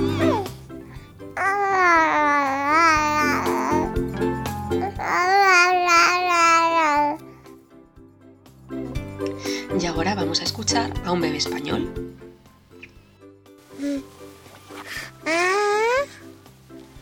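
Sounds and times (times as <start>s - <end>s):
English baby babbling in an archive recording: 0.0s - 3.9s, 4.8s - 7.3s, 13.8s - 14.0s, 15.3s - 16.1s
speech: 10.3s - 12.2s.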